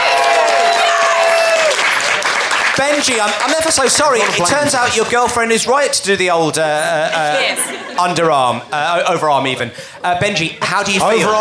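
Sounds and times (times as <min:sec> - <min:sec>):
audience applause as a vote in a debate game: 0:00.0 - 0:05.3
speech: 0:03.0 - 0:11.3
laughter: 0:06.7 - 0:09.2.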